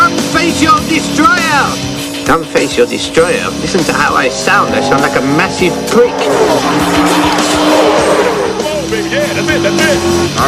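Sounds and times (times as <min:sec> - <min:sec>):
race car engines roaring past at speed: 0:00.0 - 0:10.4
speech: 0:02.3 - 0:08.1, 0:08.9 - 0:10.4
race car tire squeal: 0:03.8 - 0:08.8.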